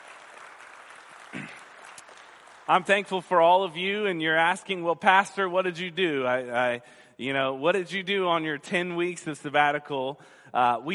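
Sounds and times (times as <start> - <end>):
church congregation clapping hands during a morning service: 0.0 - 4.6
speech: 2.7 - 10.9.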